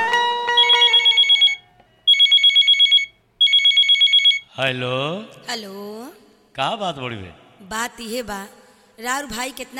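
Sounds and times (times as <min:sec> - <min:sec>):
bright tonal beeps: 0:00.6 - 0:03.6
telephone ringing with rapid electronic trilling: 0:00.6 - 0:04.5
speech: 0:04.6 - 0:09.7.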